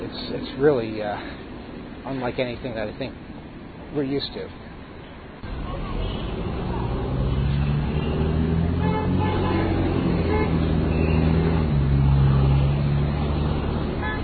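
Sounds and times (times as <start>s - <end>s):
dense steady roadway traffic at a busy intersection: 0.0s - 14.2s
traffic engines rumbling: 0.0s - 14.2s
speech: 0.3s - 1.4s, 2.0s - 3.3s, 3.9s - 4.7s
car horns tooting at a busy intersection: 7.9s - 11.7s, 13.9s - 14.2s.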